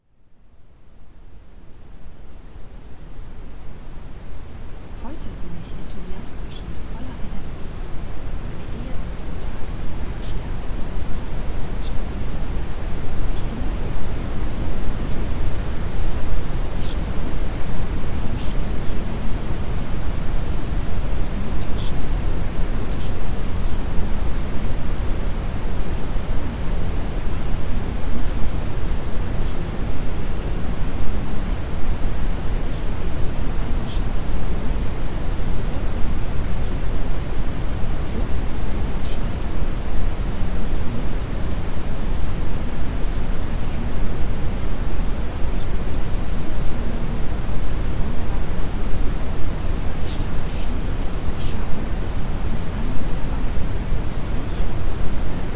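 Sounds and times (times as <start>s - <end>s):
red noise: 1.0s - 55.5s.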